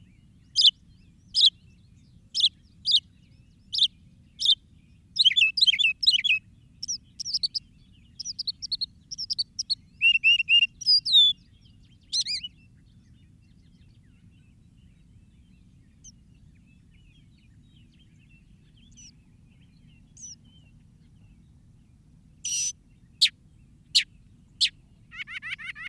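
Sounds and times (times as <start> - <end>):
Northern mockingbird singing sharp notes and varied twittering: 0.5 - 1.7, 2.3 - 12.8, 17.9 - 20.8, 22.4 - 25.8.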